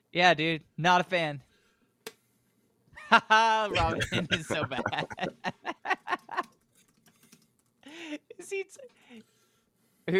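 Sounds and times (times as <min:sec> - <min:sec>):
speech: 0:00.1 - 0:01.5, 0:03.1 - 0:05.6, 0:08.5 - 0:09.3
laughter: 0:03.0 - 0:06.5
fingers typing on a computer keyboard: 0:06.4 - 0:07.8.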